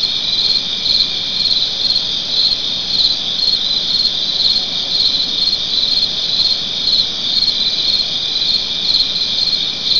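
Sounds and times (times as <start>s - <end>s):
cricket chirping in a high shrill trill: 0.0s - 9.9s.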